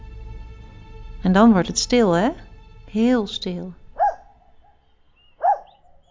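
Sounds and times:
speech: 0:01.2 - 0:03.8
dog barking: 0:04.0 - 0:04.8, 0:05.4 - 0:06.0.

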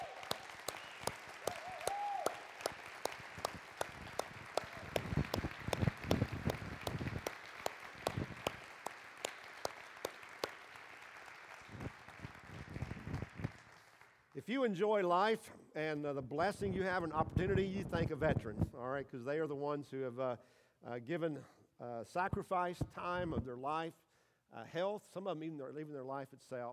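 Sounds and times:
large audience applauding for standing veterans around Veterans Day: 0:00.0 - 0:14.1
speech: 0:14.5 - 0:26.7.

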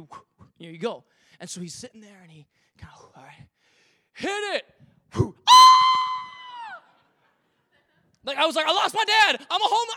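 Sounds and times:
speech: 0:00.0 - 0:05.8, 0:08.2 - 0:09.9
voice imitating a man's high-pitched falling scream: 0:05.4 - 0:06.9.

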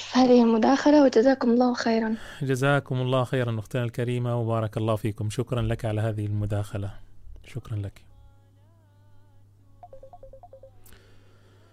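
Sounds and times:
speech: 0:00.2 - 0:08.1
short phone beeps: 0:09.8 - 0:10.8
wavering electronic tone of an incoming phone call: 0:09.8 - 0:10.9
steady low hum on a telephone line: 0:09.8 - 0:11.1.

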